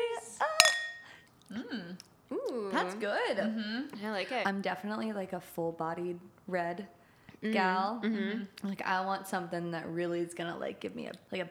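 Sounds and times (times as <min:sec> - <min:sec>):
soft voices: 0:00.0 - 0:11.4
wine glasses clinking in a toast: 0:00.4 - 0:01.2
speech: 0:01.5 - 0:11.4.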